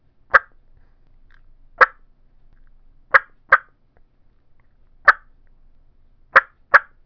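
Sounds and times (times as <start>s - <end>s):
turkey mouth call clucks: 0.3s - 0.6s, 1.8s - 2.0s, 3.1s - 3.8s, 5.0s - 5.4s, 6.3s - 7.0s.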